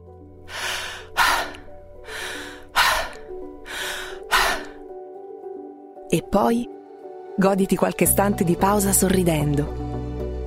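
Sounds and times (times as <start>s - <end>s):
person taking deep breaths in and out through the mouth: 0.4s - 4.9s
speech: 6.1s - 6.8s, 7.4s - 9.9s.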